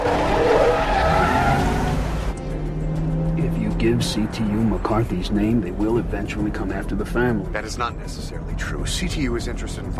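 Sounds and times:
tires squealing as a black SUV is powered around a corner: 0.0s - 2.3s
black SUV engine roar: 0.0s - 4.5s
speech: 3.8s - 9.9s.

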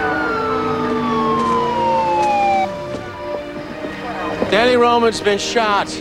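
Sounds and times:
emergency vehicle sirens wailing: 0.0s - 4.8s
engines rumbling: 0.0s - 6.0s
traffic: 0.0s - 6.0s
speech: 4.6s - 6.0s.

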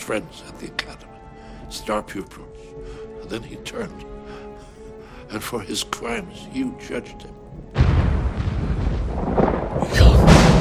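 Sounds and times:
speech: 0.1s - 1.1s, 1.7s - 4.4s, 5.3s - 7.8s
thunder crash from lightning: 7.8s - 10.5s.

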